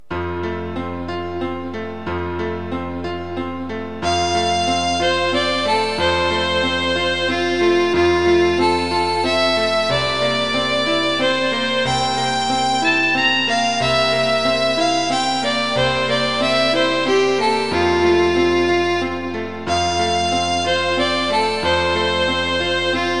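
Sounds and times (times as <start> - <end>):
violin and piano serenade: 0.0 - 23.1.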